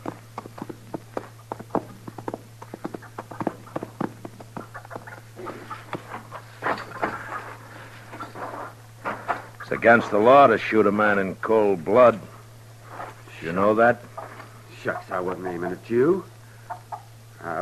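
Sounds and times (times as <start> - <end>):
horse hooves clip-clopping at a walk: 0.0 - 7.4
scuffling: 0.0 - 10.4, 12.8 - 13.6
steady low hum: 0.0 - 17.6
speech: 9.7 - 12.3, 13.4 - 14.1, 14.8 - 16.3.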